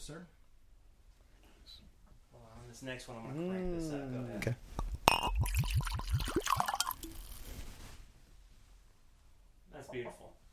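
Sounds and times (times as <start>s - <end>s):
speech: 0.1s - 0.4s, 2.7s - 4.8s, 9.8s - 10.4s
scotch glugging out of a bottle into a glass: 4.8s - 7.4s.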